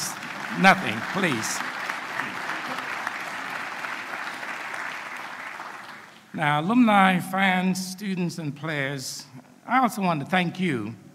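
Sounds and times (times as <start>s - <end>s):
audience applause at a morning university event: 0.0s - 6.3s
speech: 0.5s - 1.7s, 6.4s - 11.0s.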